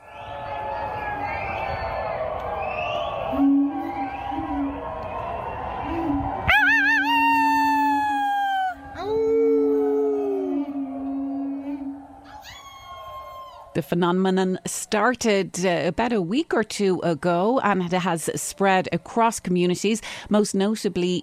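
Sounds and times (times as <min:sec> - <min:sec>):
neighbours in Denver Colorado howling from balconies and gardens in the evening: 0:00.0 - 0:13.8
one louder sustained howl: 0:03.3 - 0:13.8
speech: 0:13.8 - 0:21.2.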